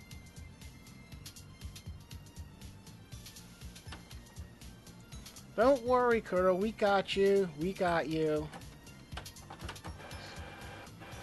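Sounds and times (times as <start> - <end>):
speech: 5.6 - 8.6
printer whirring and clattering: 8.5 - 11.2.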